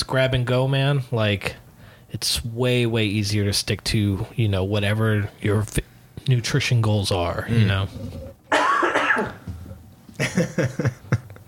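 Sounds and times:
speech: 0.1 - 8.3, 10.2 - 11.1
loud cough: 8.5 - 9.5
throat clearing: 8.5 - 9.5
laughter: 10.2 - 11.4.

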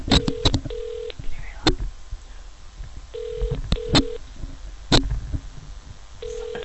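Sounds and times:
phone line ringback tone through a handset: 0.2 - 1.1, 3.2 - 4.2, 6.2 - 6.6.

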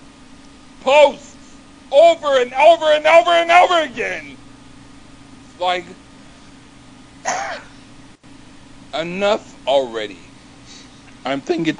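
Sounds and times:
speech: 0.8 - 1.3, 1.9 - 4.3, 5.6 - 6.0, 8.9 - 10.2, 11.2 - 11.7
raspy cough from someone whose voice is strained from yelling: 7.2 - 7.8.

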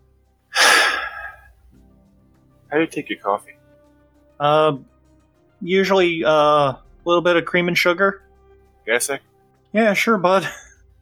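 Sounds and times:
deep breath in: 0.6 - 1.5
speech: 2.7 - 3.6, 4.4 - 4.9, 5.6 - 8.2, 8.8 - 10.6.

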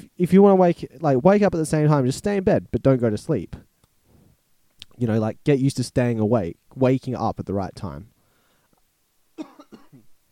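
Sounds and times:
speech: 0.2 - 3.6, 5.0 - 8.1
person coughing at a microphone: 9.4 - 10.1.

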